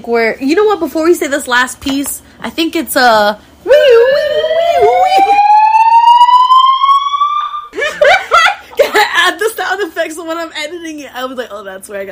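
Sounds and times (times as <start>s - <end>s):
speech: 0.0s - 4.2s, 10.2s - 12.1s
loud sustained alarm tone rising in pitch: 3.7s - 7.8s
people laughing: 7.7s - 9.4s.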